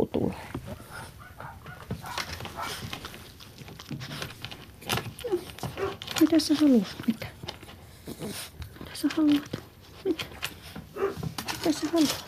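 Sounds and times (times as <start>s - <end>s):
speech: 0.1s - 0.6s, 6.2s - 7.2s, 9.1s - 9.6s, 11.8s - 12.2s
small dog barking with duck-like honks: 0.7s - 2.9s, 5.8s - 6.0s, 11.0s - 11.3s
jangling rustling clatter: 0.8s - 12.2s.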